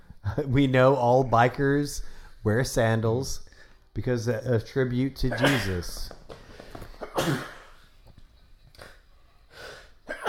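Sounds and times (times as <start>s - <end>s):
speech: 0.4s - 6.2s, 7.2s - 7.5s
man sneezing: 5.3s - 6.0s, 7.0s - 7.8s, 10.0s - 10.2s.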